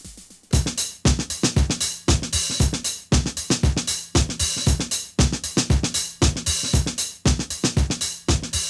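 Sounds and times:
looping breakbeat sampled from another song: 0:00.0 - 0:08.6.

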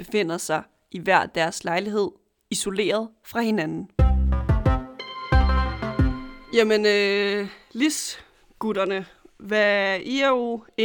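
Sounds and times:
speech: 0:00.0 - 0:04.0, 0:06.5 - 0:10.8
melodic electronic video call ringtone: 0:04.3 - 0:07.2.

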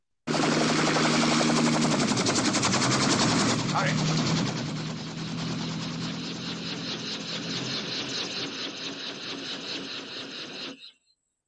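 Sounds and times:
approaching helicopter rotor chopping: 0:00.3 - 0:10.8.

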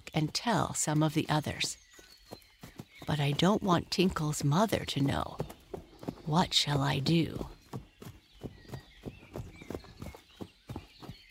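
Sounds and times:
trotting pony hooves clip-clopping: 0:00.0 - 0:11.2
speech: 0:00.2 - 0:01.8, 0:03.1 - 0:05.5, 0:06.3 - 0:07.5.

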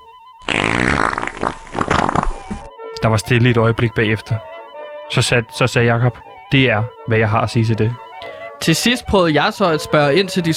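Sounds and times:
long wet fart: 0:00.4 - 0:02.7
speech: 0:03.0 - 0:04.5, 0:05.1 - 0:08.0, 0:08.6 - 0:10.5.

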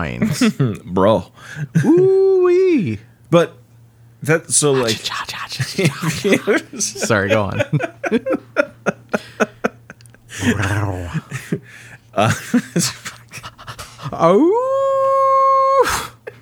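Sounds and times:
speech: 0:00.0 - 0:03.6, 0:04.2 - 0:08.4, 0:10.4 - 0:13.2, 0:14.0 - 0:15.2
laughter: 0:00.2 - 0:00.8, 0:01.6 - 0:02.2, 0:04.8 - 0:14.5
person panting and huffing: 0:10.3 - 0:12.0, 0:13.3 - 0:14.2
person imitating a cartoon wolf howl: 0:10.4 - 0:11.3, 0:14.2 - 0:16.2.

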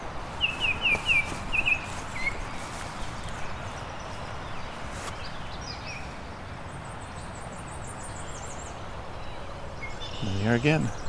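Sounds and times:
migrant songbird singing thin high slurred notes: 0:00.0 - 0:11.0
steady outdoor noise: 0:00.0 - 0:11.0
speech: 0:10.6 - 0:11.0.

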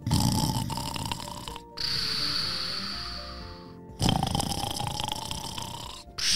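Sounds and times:
large dog snoring loudly: 0:00.0 - 0:03.4, 0:04.0 - 0:06.2.

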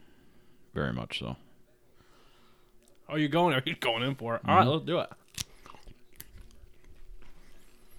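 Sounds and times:
speech: 0:00.8 - 0:01.4, 0:03.1 - 0:05.2
biting and tearing paper-thin fibrous sliced food: 0:05.0 - 0:07.8
soft wet chewing: 0:05.0 - 0:07.9
sharp crisp snap of food: 0:05.1 - 0:06.6.

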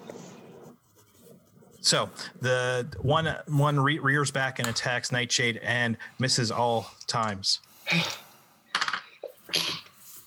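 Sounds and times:
speech: 0:01.8 - 0:08.2
person sneezing: 0:07.9 - 0:08.3, 0:09.5 - 0:10.0.

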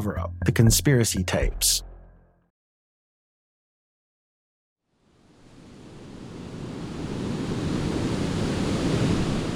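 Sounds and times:
speech: 0:00.0 - 0:01.9
ocean surf waves on a beach: 0:05.0 - 0:09.5.

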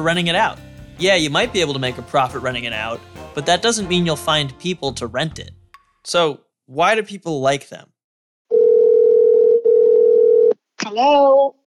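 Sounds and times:
speech: 0:00.0 - 0:07.9, 0:10.9 - 0:11.6
telephone dial tone: 0:08.5 - 0:10.6.

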